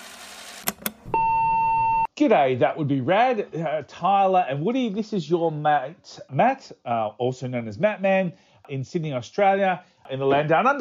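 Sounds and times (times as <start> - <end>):
quick broadband clicks: 0.6 - 1.2
loud steady electronic answering machine beep around 1 kHz: 0.7 - 2.1
speech: 2.2 - 10.7.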